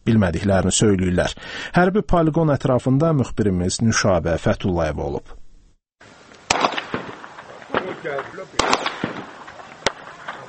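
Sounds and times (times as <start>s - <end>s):
speech: 0.2s - 5.4s, 8.0s - 8.9s
gunfire from a military firing range beside farm fields: 6.5s - 10.4s.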